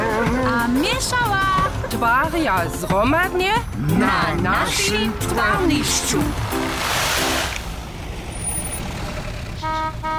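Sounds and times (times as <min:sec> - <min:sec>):
speech: 0:01.0 - 0:07.0
heavy truck rumbling by: 0:03.6 - 0:10.1
short truck horn toots: 0:09.6 - 0:10.1.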